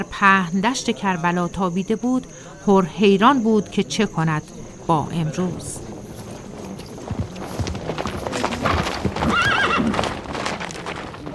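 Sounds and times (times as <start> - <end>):
speech: 0.0 - 5.8
several horses galloping with riders on a dusty open plain: 5.2 - 11.3
horse whinnying loudly: 7.2 - 10.6.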